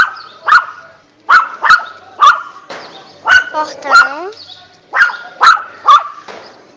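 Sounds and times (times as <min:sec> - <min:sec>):
small dog barking in high-pitched yaps: 0:00.0 - 0:02.6, 0:03.2 - 0:04.2, 0:04.9 - 0:06.2
speech: 0:03.6 - 0:03.9.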